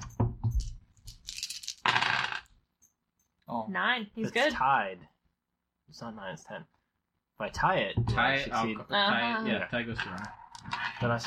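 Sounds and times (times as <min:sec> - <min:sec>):
three dice rolled onto a tabletop in a tabletop game: 0:00.6 - 0:02.5
speech: 0:03.7 - 0:05.2, 0:05.9 - 0:06.8, 0:07.4 - 0:10.4, 0:11.0 - 0:11.2.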